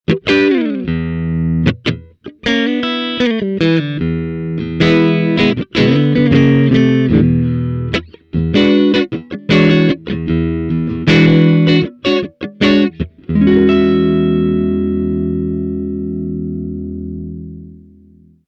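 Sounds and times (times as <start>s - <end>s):
clean electric guitar with humbucker pickup: 0.0s - 18.4s.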